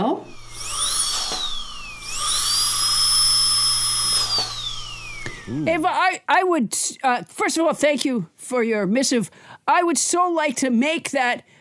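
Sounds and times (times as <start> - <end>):
dental drill whirring: 0.2 - 5.9
speech: 5.5 - 11.5.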